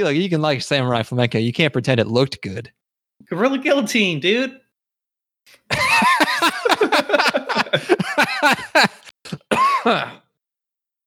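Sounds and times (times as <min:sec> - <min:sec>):
speech: 0:00.0 - 0:04.6, 0:05.5 - 0:10.2
laughter: 0:05.6 - 0:09.1
person coughing after inhaling black pepper from a hot cast iron pan: 0:07.8 - 0:10.3.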